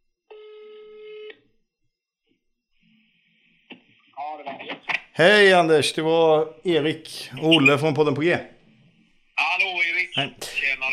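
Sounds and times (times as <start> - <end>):
telephone ringing tone: 0.3 - 1.4
speech: 4.4 - 8.6, 10.2 - 10.9.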